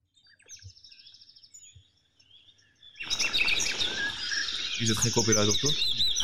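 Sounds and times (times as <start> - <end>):
birds chirping and trilling outdoors: 0.1 - 6.2
dense chorus of birds and geese calling together: 2.7 - 6.2
speech: 4.8 - 6.0.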